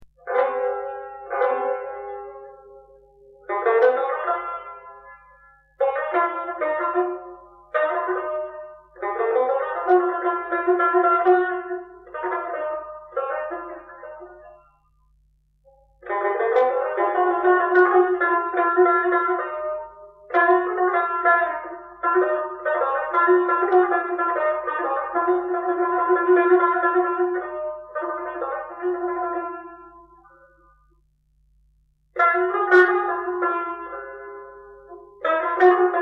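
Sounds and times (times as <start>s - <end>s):
tar playing: 0.2s - 31.0s, 32.1s - 36.0s.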